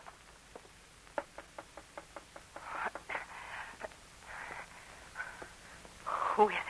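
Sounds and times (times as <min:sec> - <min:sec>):
faint hissing breathy noise: 0:00.0 - 0:06.6
sharp knocks on a window: 0:01.2 - 0:03.1.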